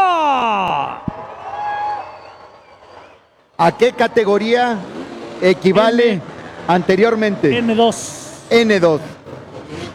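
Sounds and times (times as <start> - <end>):
crowd shouting loudly together: 0.0 - 4.9
speech: 3.6 - 9.2.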